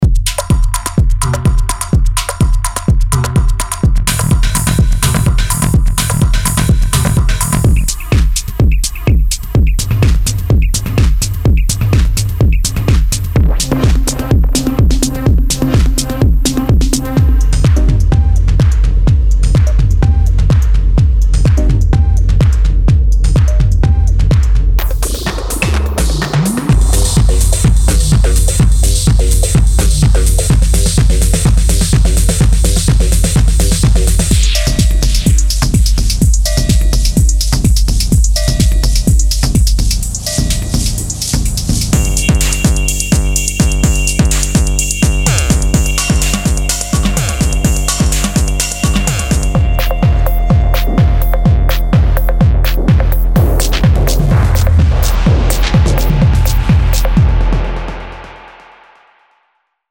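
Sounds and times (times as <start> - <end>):
drum synth kits medley: 0.0 - 58.9.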